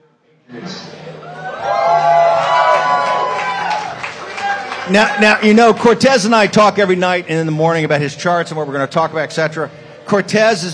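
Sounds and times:
live audience crowd cheering and whooping: 1.1s - 5.5s
speech: 4.9s - 10.7s.

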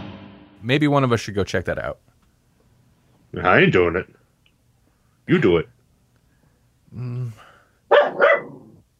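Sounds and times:
speech: 0.7s - 2.1s, 3.3s - 4.2s, 5.3s - 5.8s, 6.9s - 8.3s
dog barking: 7.9s - 8.8s
dog growling whine: 8.4s - 8.9s.

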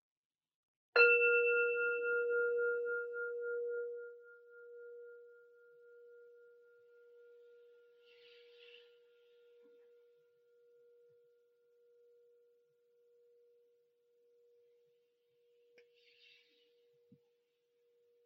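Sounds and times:
meditation bell struck to close a meditation practice: 1.0s - 7.9s.

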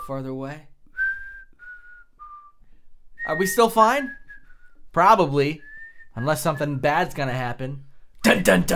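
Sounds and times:
speech: 0.1s - 0.7s, 3.2s - 4.2s, 5.0s - 8.7s
person whistling sliding notes imitating a ghost: 0.9s - 4.9s, 5.6s - 6.1s.

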